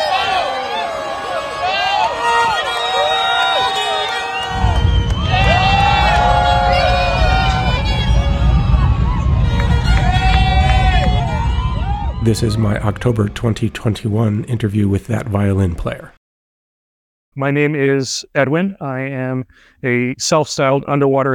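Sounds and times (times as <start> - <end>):
large crowd cheering and whooping at a rocket launch site: 0.0 - 13.7
deep loud rumble of a rocket at liftoff: 4.4 - 16.0
speech: 12.3 - 16.2, 17.4 - 21.3.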